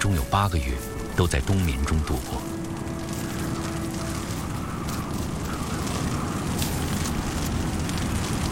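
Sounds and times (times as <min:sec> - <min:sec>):
hail pattering: 0:00.0 - 0:08.4
speech: 0:00.1 - 0:02.6.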